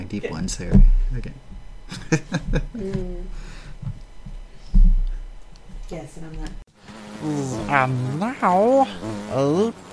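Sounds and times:
short insect-like buzz sound effect: 0.0s - 9.9s
speech: 0.1s - 4.0s, 5.9s - 6.6s, 7.2s - 9.9s
laughter: 1.9s - 2.8s.

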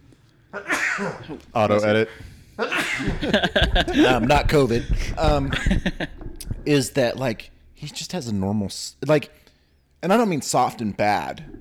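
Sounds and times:
speech: 0.5s - 9.4s, 10.0s - 11.5s
loud breathy sneeze: 0.6s - 1.4s
laughter: 2.6s - 6.9s.

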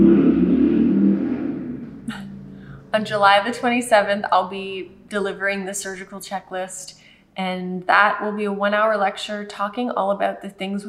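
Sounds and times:
motorcycle engine droning past outside: 0.0s - 3.8s
speech: 3.0s - 10.8s.

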